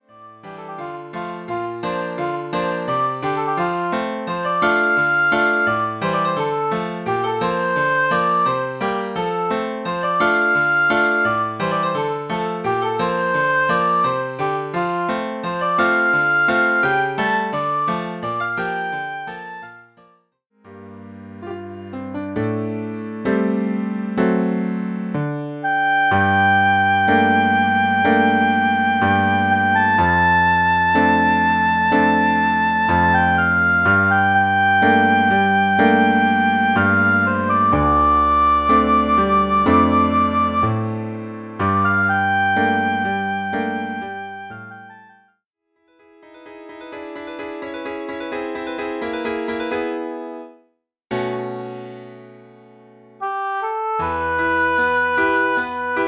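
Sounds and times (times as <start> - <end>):
oboe: 0.0 - 20.0, 25.6 - 41.0, 41.6 - 45.2, 53.2 - 56.0
piano: 0.0 - 56.0.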